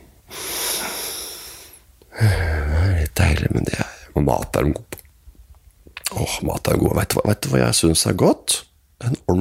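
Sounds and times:
long steady exhale during a breathing exercise for back and core muscles: 0:00.3 - 0:02.4
deep breath drawn in with a throaty rasp during a breathing exercise: 0:00.3 - 0:02.7
speech: 0:03.5 - 0:04.9, 0:06.3 - 0:09.3.

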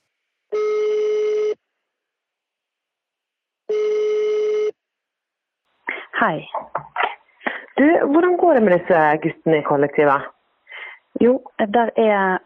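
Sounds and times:
telephone ringback tone on an outgoing call: 0:00.6 - 0:01.6, 0:03.7 - 0:04.7
speech: 0:06.2 - 0:06.9, 0:07.8 - 0:10.4, 0:11.2 - 0:12.4.

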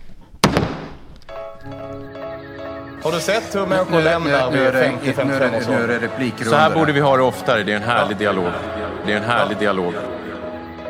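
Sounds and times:
parliament speaker's wooden gavel striking: 0:00.4 - 0:01.1
speech: 0:01.6 - 0:02.3, 0:03.0 - 0:10.2
steady tonal hum with overtones: 0:01.6 - 0:10.8.

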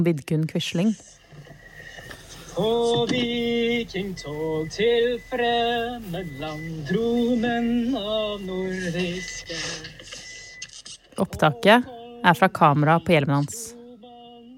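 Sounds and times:
speech: 0:00.0 - 0:01.2, 0:02.6 - 0:10.0, 0:11.2 - 0:13.8
man singing an old marching song in Norwegian: 0:02.4 - 0:10.1, 0:11.2 - 0:14.5.

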